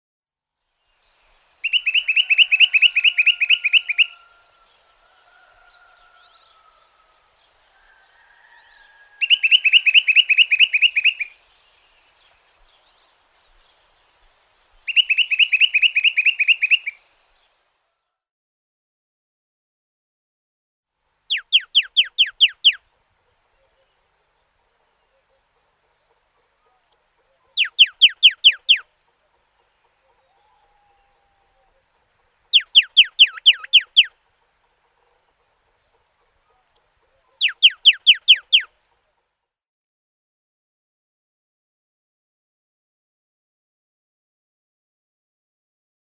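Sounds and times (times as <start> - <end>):
Eastern rock nuthatch singing: 1.6 - 4.7, 9.2 - 13.7, 14.8 - 17.0, 21.3 - 22.8, 23.4 - 34.2, 35.0 - 38.7.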